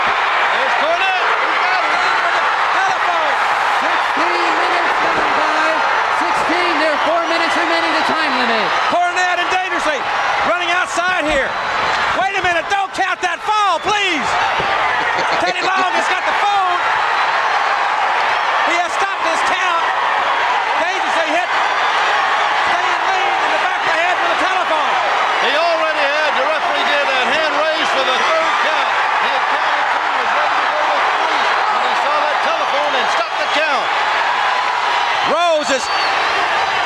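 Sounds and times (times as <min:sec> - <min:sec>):
wrestling arena crowd cheering and shouting: 0:00.0 - 0:36.8
laughter: 0:14.7 - 0:16.8, 0:26.4 - 0:31.0.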